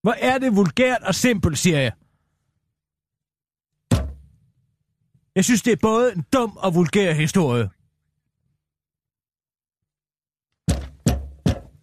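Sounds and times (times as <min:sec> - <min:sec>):
speech: 0:00.0 - 0:02.0, 0:05.4 - 0:07.8
heavy pounding thuds with short ringing decay: 0:03.9 - 0:04.3, 0:10.6 - 0:11.8.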